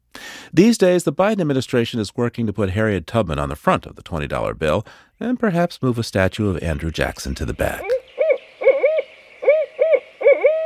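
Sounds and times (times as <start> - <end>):
speech: 0.5 - 8.0
barred owl hooting: 7.4 - 10.6.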